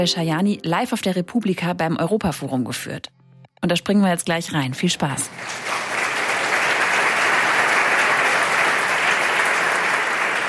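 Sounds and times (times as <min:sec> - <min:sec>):
speech: 0:00.0 - 0:05.9
live audience at a Europe forum talk applauding: 0:05.3 - 0:10.4.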